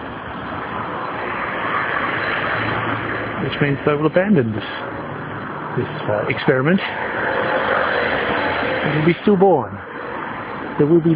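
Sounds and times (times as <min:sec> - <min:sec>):
bus driving past on a city street: 0:00.0 - 0:11.1
speech: 0:03.6 - 0:04.8, 0:05.8 - 0:07.1, 0:08.8 - 0:09.8, 0:10.8 - 0:11.1.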